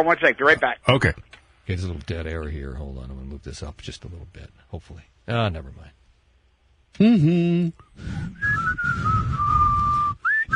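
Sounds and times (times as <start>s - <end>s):
speech: 0.0s - 6.0s, 6.9s - 9.5s
person whistling a wandering tune: 7.0s - 10.5s.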